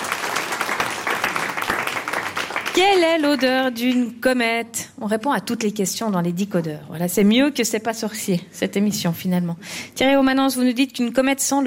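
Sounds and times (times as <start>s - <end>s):
audience applauding a guest: 0.0s - 3.4s
speech: 2.8s - 11.6s.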